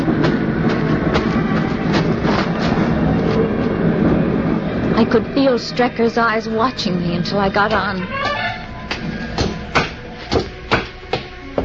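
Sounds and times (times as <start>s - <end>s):
sharp clacks of rail cars: 0.0s - 3.8s, 7.6s - 11.6s
train rumbling at a railway station: 0.0s - 11.6s
speech: 5.1s - 8.4s.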